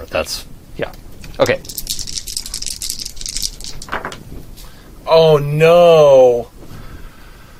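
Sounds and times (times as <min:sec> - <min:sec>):
speech: 0:00.0 - 0:01.8, 0:05.1 - 0:06.5
dice clattering across a tabletop: 0:01.2 - 0:04.3.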